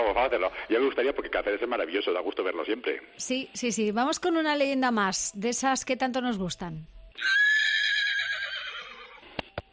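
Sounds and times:
speech: 0:00.0 - 0:07.5
horse whinnying: 0:07.2 - 0:09.4.

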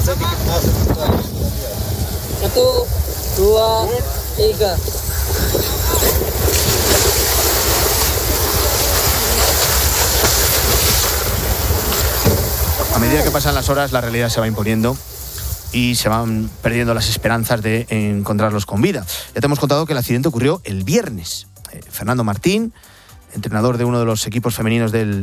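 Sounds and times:
voices calling out: 0:00.0 - 0:15.1
divers' motorboat engine heading out to sea in Indonesia: 0:00.0 - 0:15.4
rushing sea spray: 0:00.0 - 0:19.9
wind at sea: 0:00.0 - 0:25.2
speech: 0:03.4 - 0:05.6, 0:13.1 - 0:15.1, 0:15.7 - 0:25.2.

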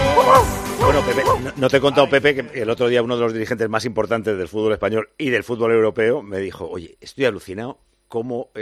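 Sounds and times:
small dog barking happily: 0:00.2 - 0:00.5
speech: 0:01.1 - 0:08.6.

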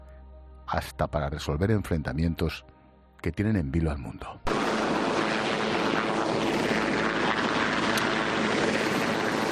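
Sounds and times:
speech: 0:00.7 - 0:04.6
helicopter engine and rotor flying overhead: 0:04.5 - 0:09.5.

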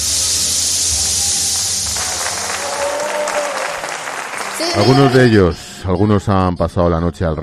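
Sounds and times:
theatre audience applauding at a lottery draw in the Teatro Real: 0:01.9 - 0:05.5
faint whistles or cheers from a theatre audience: 0:02.0 - 0:05.2
speech: 0:04.6 - 0:07.4.

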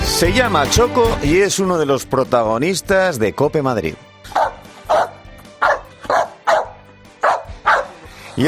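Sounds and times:
speech: 0:00.2 - 0:04.1
American Bully dog barking loud deep woofs: 0:04.3 - 0:08.4.

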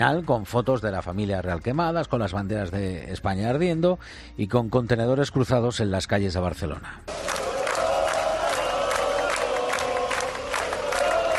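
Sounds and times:
speech: 0:00.0 - 0:07.3
crowd roaring and shouting at a night street protest in Barcelona: 0:07.1 - 0:11.3
people yelling and cheering: 0:07.1 - 0:11.3.

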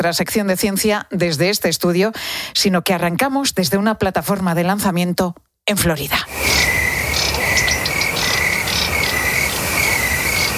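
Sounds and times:
speech: 0:00.0 - 0:06.8
cricket chorus chirping at night: 0:06.3 - 0:10.5.

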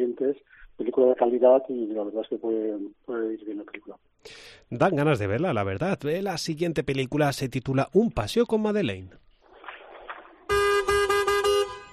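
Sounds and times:
noise: 0:00.0 - 0:11.9
speech: 0:00.2 - 0:09.2
car horn honking: 0:10.5 - 0:11.9.

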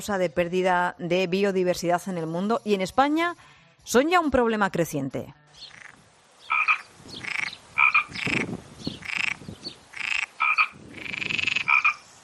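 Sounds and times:
speech: 0:00.0 - 0:05.8
American bullfrog croaking: 0:05.6 - 0:12.1.

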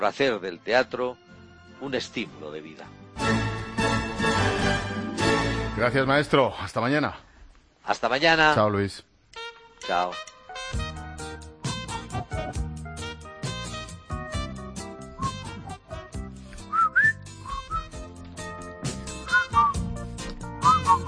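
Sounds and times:
speech: 0:00.0 - 0:03.3, 0:05.8 - 0:09.1, 0:09.8 - 0:10.8
busy musical backing: 0:00.0 - 0:06.4, 0:09.3 - 0:21.0
person whistling a melody: 0:15.2 - 0:15.8, 0:16.6 - 0:18.0, 0:19.2 - 0:20.0, 0:20.6 - 0:21.0.

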